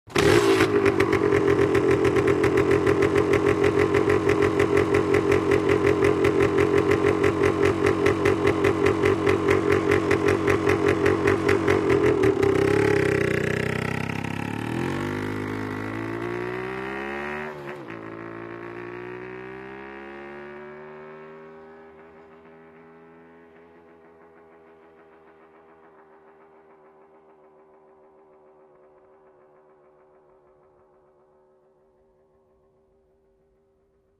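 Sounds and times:
motorcycle starting, idling and driving away: 0.1 - 34.1.

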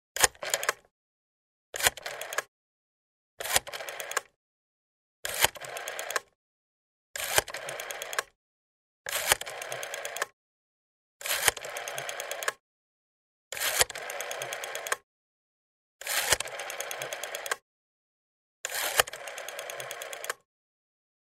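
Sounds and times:
rotary telephone dialing a number: 0.2 - 0.8, 1.8 - 2.5, 3.4 - 4.3, 5.3 - 6.3, 7.2 - 8.3, 9.1 - 10.4, 11.2 - 12.6, 13.6 - 15.0, 16.0 - 17.6, 18.7 - 20.4.

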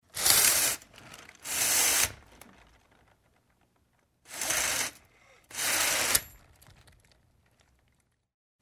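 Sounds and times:
window vertical blinds: 0.0 - 8.0.

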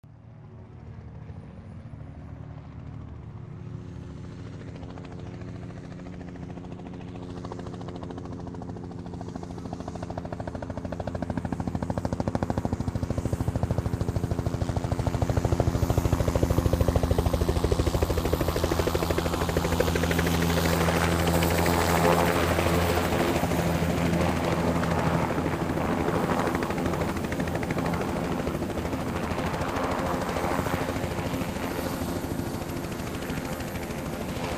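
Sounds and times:
helicopter approaching, landing and leaving: 0.0 - 34.5.

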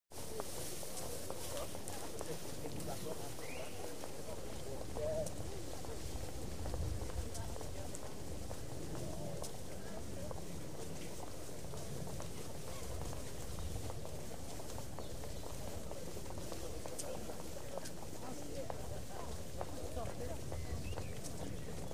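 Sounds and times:
footsteps of people in a city park: 0.2 - 21.9
people talking in a city park: 0.2 - 21.9
birds in a city park: 20.5 - 21.9.

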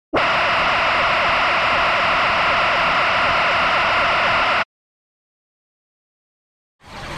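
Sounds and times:
space alien radio signal: 0.1 - 4.7.

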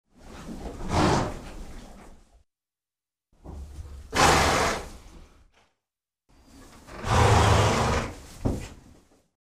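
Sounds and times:
horse snorting: 0.7 - 1.5, 4.1 - 5.0, 7.0 - 8.2.

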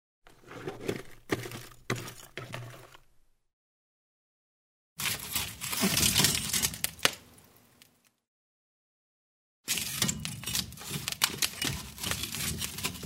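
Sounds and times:
stirring coal in a fireplace to make a fire: 0.3 - 3.2, 5.0 - 8.1, 9.7 - 13.0.

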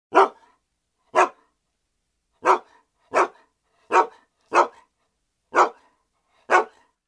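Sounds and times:
Eskimo dog: 0.1 - 1.5, 2.4 - 7.0.

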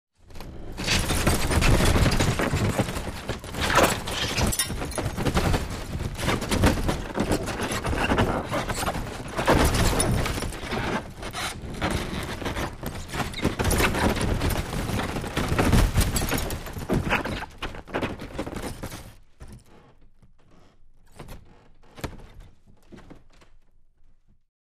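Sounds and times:
wooden furniture breaking under blows: 0.8 - 19.1.

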